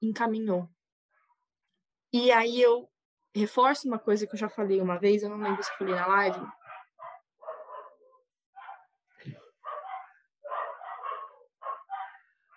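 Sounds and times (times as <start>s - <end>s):
speech: 0.0s - 0.8s, 2.1s - 6.6s
dogs fighting, barking and yelping: 5.3s - 12.5s.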